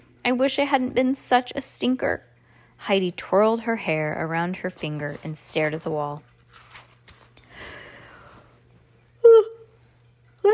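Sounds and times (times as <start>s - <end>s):
speech: 0.3s - 6.3s
person yawning with a breathy intake and voiced groan: 9.2s - 9.7s.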